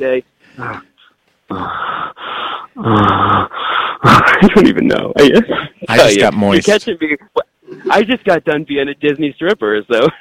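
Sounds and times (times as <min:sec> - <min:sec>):
speech: 0:00.0 - 0:00.9, 0:01.5 - 0:02.0, 0:02.8 - 0:03.3, 0:04.4 - 0:10.1
person moaning and groaning in a fake orgasm: 0:00.6 - 0:00.9, 0:01.5 - 0:02.1, 0:02.7 - 0:04.2.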